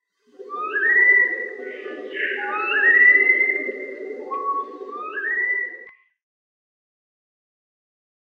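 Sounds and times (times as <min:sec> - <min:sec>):
black-faced bird giving long upward-sliding whistles: 0:00.4 - 0:06.0.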